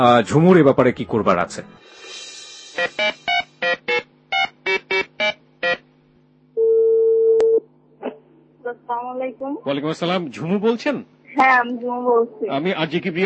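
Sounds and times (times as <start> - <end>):
speech: 0.0 - 2.0, 2.8 - 3.7, 8.9 - 13.2
telephone ringing tone: 2.8 - 5.8, 6.6 - 7.6.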